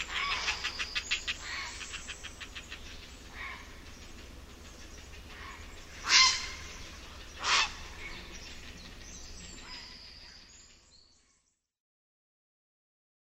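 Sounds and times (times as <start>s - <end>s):
Grey heron giving loud harsh croaking calls: 0.0s - 10.5s
faint hiss of background noise: 0.0s - 11.0s.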